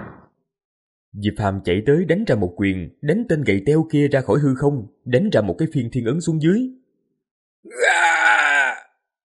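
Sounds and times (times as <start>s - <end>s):
speech: 1.1s - 6.8s, 7.6s - 8.4s
man's miserable scream of pain during a fight: 7.7s - 9.0s.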